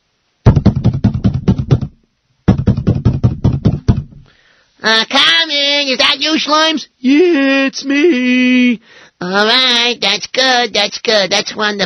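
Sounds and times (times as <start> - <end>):
knuckles rapping on a door: 0.5 - 4.2
speech: 4.8 - 11.8.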